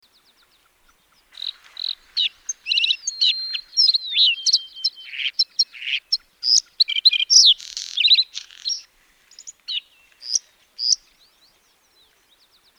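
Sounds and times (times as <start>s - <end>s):
bluethroat singing: 1.3s - 8.9s.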